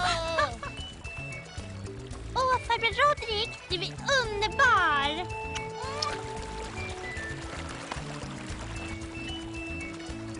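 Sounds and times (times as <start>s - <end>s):
faint musical tones: 0.0s - 10.3s
speech: 2.8s - 5.6s
water gushing from a freshly dug hole: 5.8s - 10.3s.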